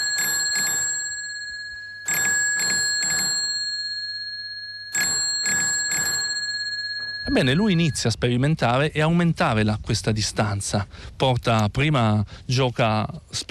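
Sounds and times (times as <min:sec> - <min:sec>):
electric bell ringing on wireless receiver: 0:00.0 - 0:08.1
speech: 0:07.3 - 0:13.4.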